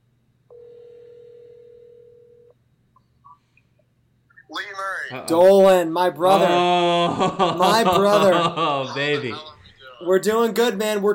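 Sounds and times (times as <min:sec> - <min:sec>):
telephone dial tone as a call is placed: 0:00.5 - 0:02.5
speech: 0:04.5 - 0:11.1
laughter: 0:06.2 - 0:10.0.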